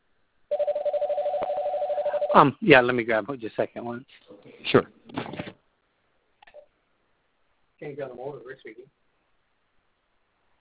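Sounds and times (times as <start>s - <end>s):
telephone ringing: 0.5s - 2.5s
speech: 2.3s - 5.0s, 7.8s - 9.0s.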